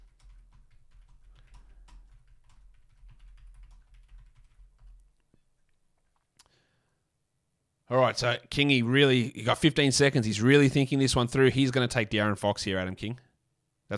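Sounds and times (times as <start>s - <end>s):
typing on a computer keyboard to write a live chat message: 0.0s - 5.2s
speech: 7.9s - 13.2s.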